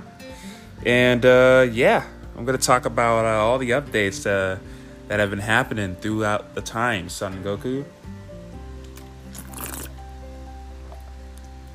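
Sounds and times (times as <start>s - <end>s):
speech: 0.4s - 8.0s
person swallowing a mouthful of water: 9.3s - 10.0s.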